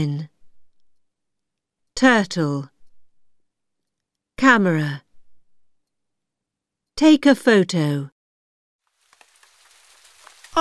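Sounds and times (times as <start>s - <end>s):
speech: 2.0s - 2.7s, 4.4s - 5.0s, 7.0s - 8.1s
rain falling: 8.8s - 10.6s.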